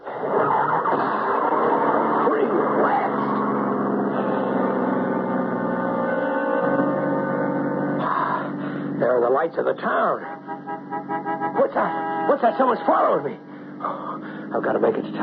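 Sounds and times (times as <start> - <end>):
car engine starting and rumbling: 0.0 - 15.2
speech: 9.4 - 10.4, 12.4 - 15.2.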